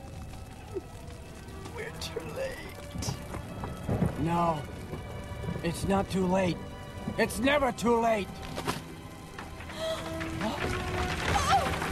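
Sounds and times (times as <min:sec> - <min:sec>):
speech: 0:00.7 - 0:01.0, 0:02.0 - 0:03.2, 0:04.2 - 0:04.8, 0:05.6 - 0:08.4
heavy burning timbers crashing onto a wooden platform: 0:08.5 - 0:11.8.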